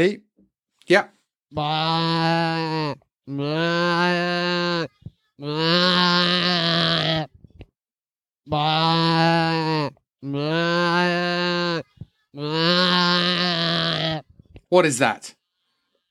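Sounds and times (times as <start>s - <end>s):
speech: 0.0s - 0.2s, 0.9s - 7.3s, 8.5s - 11.8s, 14.7s - 15.4s
goat bleating: 1.5s - 7.4s, 8.4s - 14.6s.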